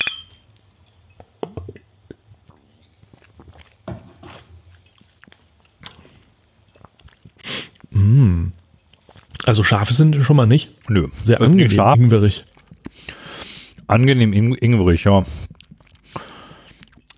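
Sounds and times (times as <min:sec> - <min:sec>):
small shot glasses clinking together in a toast: 0:00.0 - 0:00.5
speech: 0:09.5 - 0:12.5, 0:13.9 - 0:15.4.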